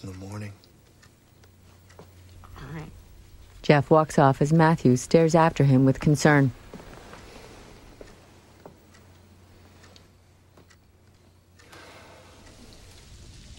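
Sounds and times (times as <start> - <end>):
speech: 0.0 - 0.7, 2.6 - 3.0, 3.7 - 6.6
faint low hum: 0.0 - 13.5
scattered drips and soft ticking impacts: 11.6 - 13.5
steady rain outside a house: 11.7 - 13.5.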